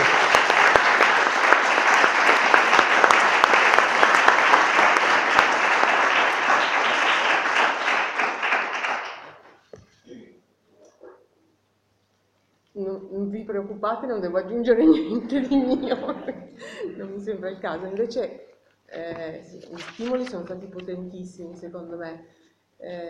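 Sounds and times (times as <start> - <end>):
audience applause: 0.0 - 9.6
speech: 13.8 - 23.0.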